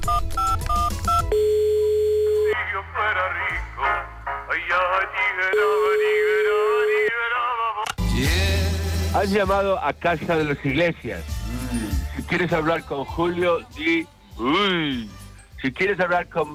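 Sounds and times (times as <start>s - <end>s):
steady telephone dial tone: 0.0s - 2.6s
touch-tone telephone dialing beeps: 0.0s - 2.6s, 5.5s - 7.2s
person speaking through a telephone line: 2.4s - 3.9s, 4.5s - 7.9s
speech: 9.2s - 16.5s.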